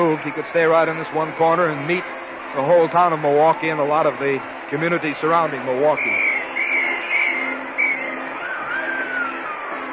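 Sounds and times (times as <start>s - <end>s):
speech: 0.0s - 6.3s
cab engine drone on a crowded street: 0.0s - 9.9s
high wavering squeal-like tones: 6.0s - 9.9s.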